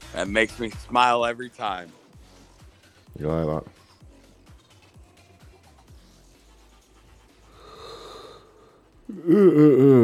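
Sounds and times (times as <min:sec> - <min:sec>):
speech: 0:00.1 - 0:02.0, 0:03.2 - 0:03.8, 0:09.1 - 0:10.0
tired person yawning: 0:07.6 - 0:10.0.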